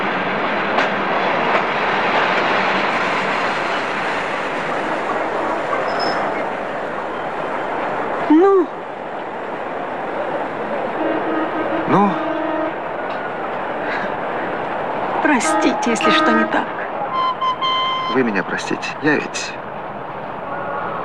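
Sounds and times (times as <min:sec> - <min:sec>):
train rumbling along the rails: 0:00.0 - 0:21.0
brief high train whistle or horn blast: 0:11.0 - 0:12.8, 0:15.4 - 0:18.2
speech: 0:15.8 - 0:16.8, 0:18.1 - 0:19.3.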